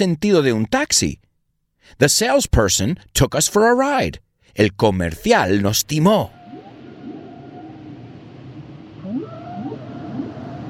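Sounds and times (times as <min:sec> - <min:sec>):
speech: 0:00.0 - 0:06.4
hazy underwater background: 0:05.4 - 0:10.6
whale song: 0:06.1 - 0:10.6.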